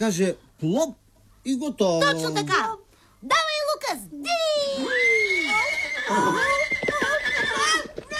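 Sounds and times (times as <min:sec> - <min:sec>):
speech: 0:00.0 - 0:05.1
horse whinnying with quavering tremble: 0:04.9 - 0:08.0.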